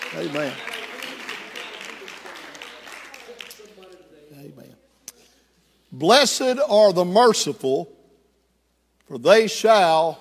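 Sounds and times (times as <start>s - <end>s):
audience clapping: 0.0s - 4.2s
speech: 0.1s - 0.7s, 4.3s - 4.8s, 5.9s - 8.0s, 9.1s - 10.1s.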